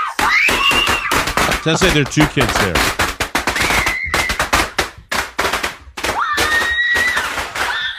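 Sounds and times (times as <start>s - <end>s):
firecrackers going off indoors: 0.2s - 7.8s
speech: 1.7s - 3.0s.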